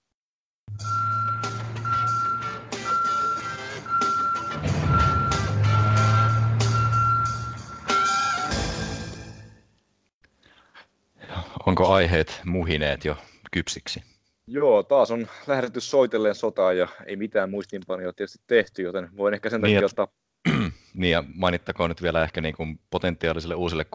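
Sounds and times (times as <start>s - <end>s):
garbage truck reversing alarm beeps: 0.7s - 8.4s
garbage truck diesel engine rumbling: 0.8s - 8.1s
speech: 11.8s - 23.9s.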